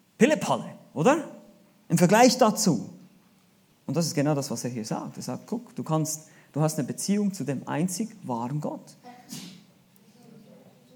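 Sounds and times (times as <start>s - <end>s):
speech: 0.2s - 3.0s, 3.9s - 9.5s
faint low murmuring: 9.0s - 10.9s
person sneezing: 9.2s - 9.7s.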